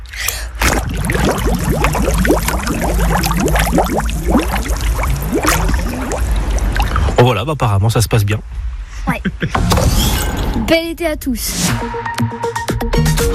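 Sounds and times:
bubbles blown underwater by a swimmer in a swimming pool: 0.6s - 7.2s
speech: 7.4s - 13.3s.

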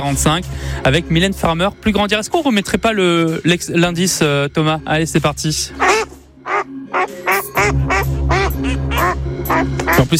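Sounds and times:
speech: 0.0s - 6.1s, 7.0s - 10.1s
duck quacking: 5.7s - 10.1s.

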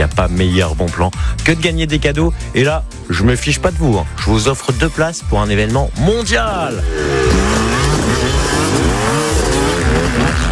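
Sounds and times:
speech: 0.1s - 7.6s
motocross motorcycle engines revving at a motocross race: 6.5s - 10.5s.

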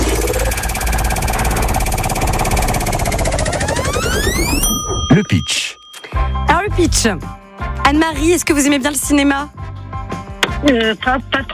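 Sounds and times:
prize wheel spinning on a French game show: 0.2s - 6.1s
speech: 5.2s - 5.8s, 6.7s - 9.6s, 10.6s - 11.5s.

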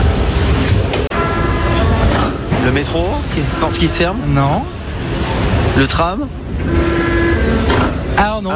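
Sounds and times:
robots in a car factory building cars: 0.0s - 8.5s
speech: 2.7s - 6.9s, 8.2s - 8.5s.

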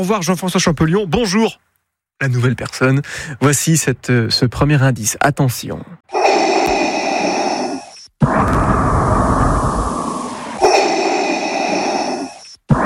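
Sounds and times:
speech: 0.0s - 6.1s
villain's mechanical respirator breathing: 6.1s - 12.8s.

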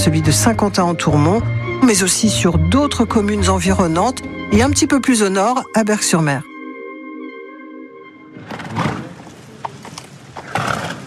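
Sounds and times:
speech: 0.0s - 6.5s
horse snorting: 8.4s - 9.8s, 10.4s - 11.0s
horse neighing: 10.4s - 11.0s.

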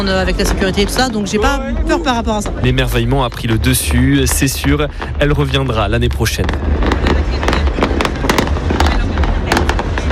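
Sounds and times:
speech: 0.0s - 7.5s
faint crowd voices: 0.0s - 10.1s
fireworks exploding in bangs and crackles: 0.0s - 10.1s
low rumble: 0.0s - 10.1s.

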